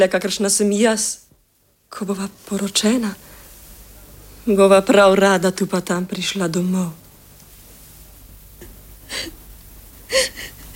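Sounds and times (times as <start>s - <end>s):
speech: 0.0s - 1.2s, 1.9s - 3.4s, 4.4s - 7.0s, 9.1s - 9.4s, 10.1s - 10.7s
woman sobbing softly: 8.6s - 9.4s, 10.0s - 10.7s.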